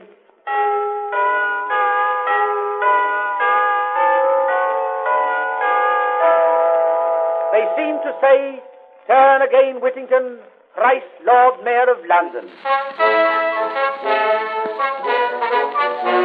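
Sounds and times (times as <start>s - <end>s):
peal of church bells ringing: 0.5s - 8.8s, 12.6s - 16.2s
speech: 7.8s - 16.2s.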